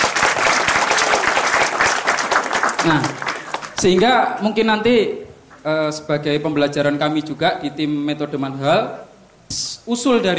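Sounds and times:
audience applause at a talk: 0:00.0 - 0:04.0
speech: 0:02.8 - 0:03.2, 0:03.8 - 0:10.3.

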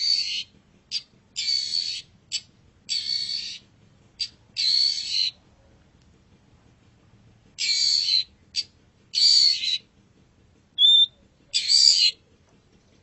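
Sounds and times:
Long-tailed shrike harsh grating rasps: 0:00.0 - 0:03.6, 0:04.2 - 0:05.4, 0:07.6 - 0:09.8, 0:10.8 - 0:12.1.

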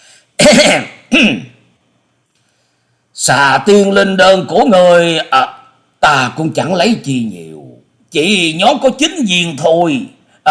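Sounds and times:
man dry coughing and clearing throat: 0:00.4 - 0:01.6
speech: 0:00.5 - 0:01.5, 0:03.2 - 0:10.4.

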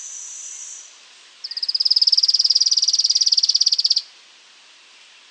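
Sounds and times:
Streak-capped Antwren Terenura maculata giving a high fast trill: 0:01.4 - 0:04.0.

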